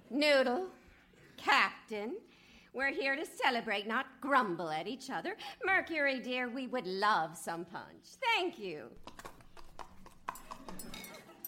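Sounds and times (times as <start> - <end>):
speech: 0.2 - 0.8, 1.4 - 9.3
horse hooves clip-clopping: 9.0 - 11.4.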